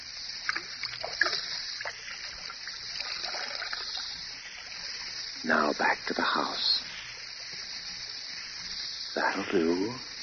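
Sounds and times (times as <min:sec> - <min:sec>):
whiskey glugging and splashing out of a half-full bottle: 0:00.4 - 0:05.0
speech: 0:05.5 - 0:06.8, 0:09.2 - 0:10.1.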